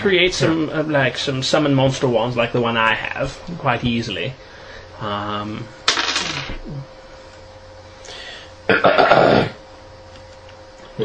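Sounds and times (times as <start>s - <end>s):
speech: 0.0s - 7.0s, 8.8s - 9.5s
low voiced hum: 0.0s - 11.0s
throat clearing: 8.7s - 9.6s.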